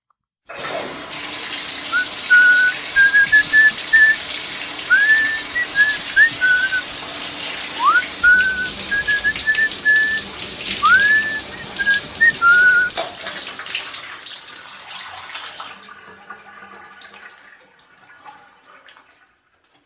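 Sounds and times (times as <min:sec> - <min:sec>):
shower water running: 0:00.5 - 0:19.8
person whistling a wavering tuneful melody: 0:01.9 - 0:04.2, 0:04.9 - 0:06.9, 0:07.8 - 0:13.0.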